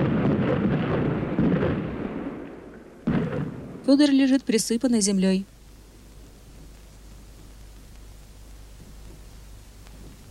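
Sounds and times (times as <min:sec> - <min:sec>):
artillery shells exploding around a battlefield: 0:00.0 - 0:03.9
speech: 0:03.9 - 0:05.5.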